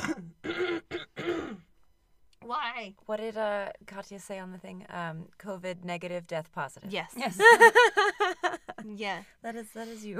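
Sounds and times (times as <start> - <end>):
harsh throaty coughing fit: 0.0 - 1.8
speech: 2.8 - 10.1.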